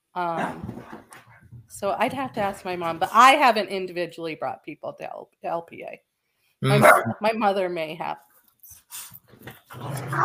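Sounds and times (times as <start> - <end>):
speech: 0.2 - 1.0, 1.7 - 10.2
dog barking: 6.8 - 7.2, 10.1 - 10.2
dog low rumbling growl: 9.7 - 10.2.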